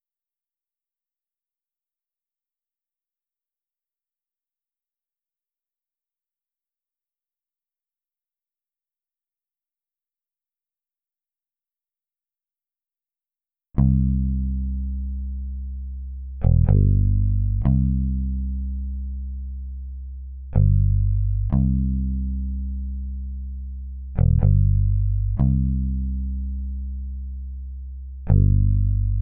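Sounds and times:
124 BPM bass line in C minor: 13.8 - 29.2.

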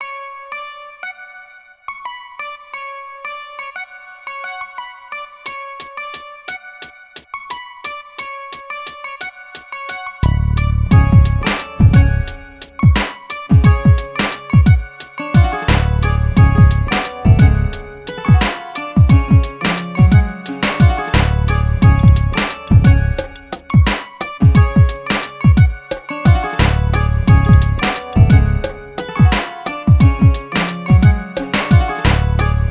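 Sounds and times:
hip hop music in C sharp minor: 10.6 - 32.7.

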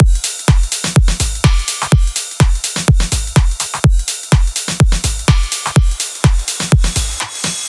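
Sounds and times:
big EDM drum loop in future house style: 0.0 - 7.6.

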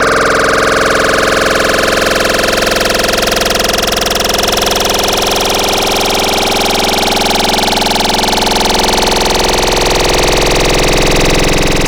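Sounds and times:
synthesizer wavetable tone: 0.0 - 11.8.

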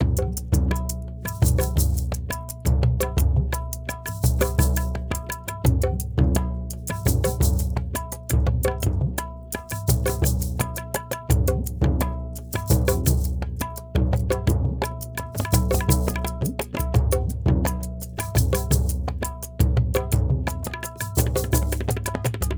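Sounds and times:
hip hop percussion mix with duff: 0.0 - 22.5.

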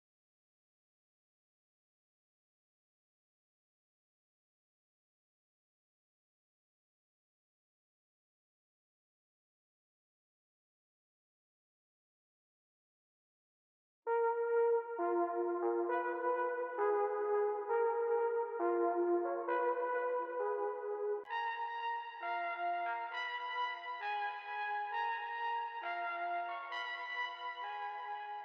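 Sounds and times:
brass in D-sharp minor at 133 BPM: 14.1 - 28.0.

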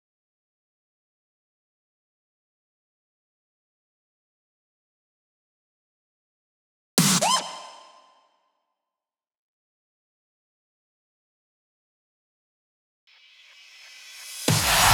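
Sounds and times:
big EDM snare drum loop in future house style: 14.5 - 14.9.

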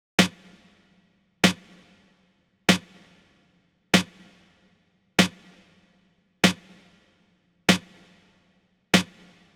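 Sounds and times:
snare drum track: 0.2 - 3.3, 4.0 - 4.6, 5.2 - 7.1, 7.7 - 8.4, 9.0 - 9.5.

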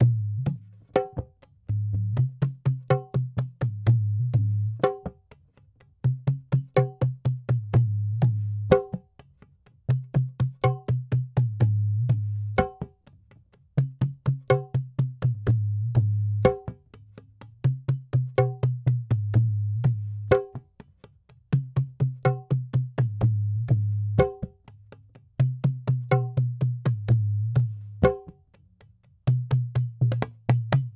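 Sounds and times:
dholak hip hop beat: 0.0 - 9.3, 9.9 - 13.1, 13.8 - 30.9.

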